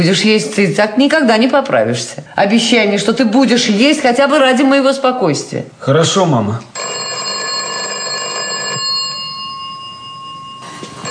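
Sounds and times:
speech: 0.0 - 6.9
telephone ringing in a family home: 6.8 - 11.1.

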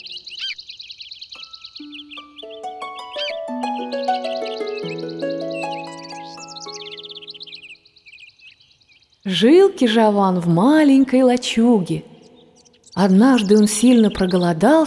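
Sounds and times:
birds chirping: 0.0 - 14.8
sustained chime-like tones: 1.8 - 7.6
speech: 9.2 - 12.1, 13.0 - 14.8.

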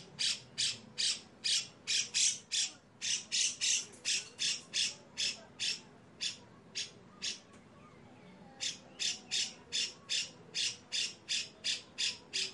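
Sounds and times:
Grey-cheeked bulbul harsh rasping song: 0.2 - 7.5, 8.6 - 12.5.

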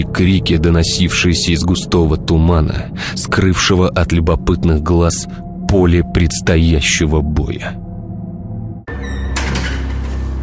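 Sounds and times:
speech: 0.0 - 7.8
door flung open: 8.9 - 10.4.

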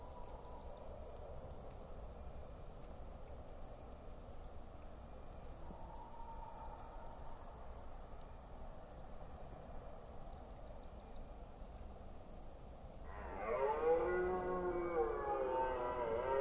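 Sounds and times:
faint wind: 0.0 - 16.3
red deer stag roaring in rutting season in Forêt d'Orléans France: 13.1 - 16.3.

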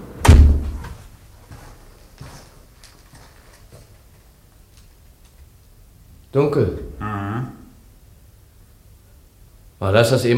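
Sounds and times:
house door shutting with a heavy low thud: 0.2 - 1.0
speech: 6.3 - 6.9, 9.8 - 10.3.

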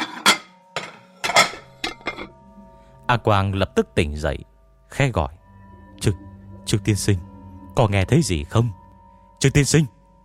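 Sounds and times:
ceramic bowls and plates clinking together: 0.0 - 2.4
speech: 3.1 - 5.4, 6.0 - 8.8, 9.4 - 10.0.

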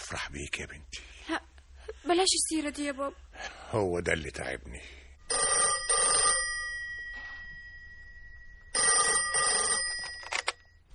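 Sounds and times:
speech: 0.1 - 1.4, 2.0 - 5.0
old-style telephone bell ringing with a trilling double ring: 5.3 - 10.8.

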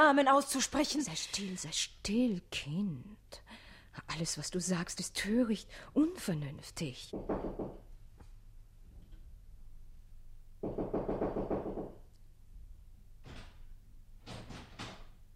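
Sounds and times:
speech: 0.0 - 7.8
knocking on a locked door: 7.1 - 7.8, 10.6 - 12.0, 14.2 - 15.1.

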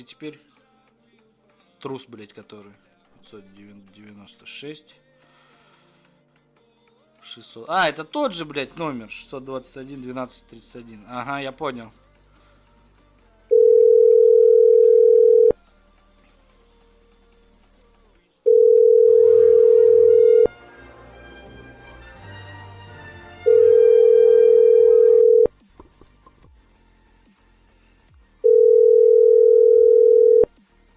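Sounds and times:
speech: 0.0 - 0.5, 1.8 - 5.0, 7.2 - 12.0
telephone line tone after dialing a number: 13.5 - 15.6, 18.5 - 20.5, 23.5 - 25.5, 28.4 - 30.5.

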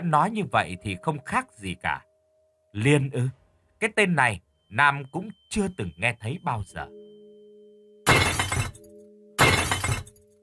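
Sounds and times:
speech: 0.0 - 2.1, 2.8 - 7.1
faint steady hum: 0.0 - 10.4
something breaking and shattering inside a room: 8.1 - 8.8, 9.4 - 10.2.

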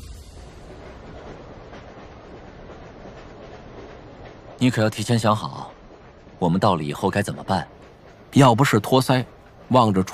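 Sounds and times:
train running along rails: 0.0 - 10.1
speech: 4.6 - 5.8, 6.4 - 10.1.

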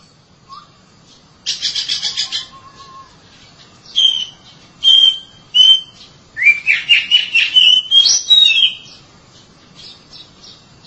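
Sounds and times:
Oriental magpie-robin chatter and whistled notes: 0.4 - 0.8, 1.4 - 9.0.

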